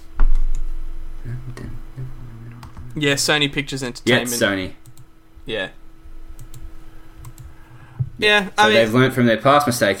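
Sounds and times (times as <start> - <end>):
speech: 3.0 - 4.8, 5.5 - 5.8, 8.2 - 9.9
computer keyboard clicks: 6.4 - 6.6, 7.2 - 7.6.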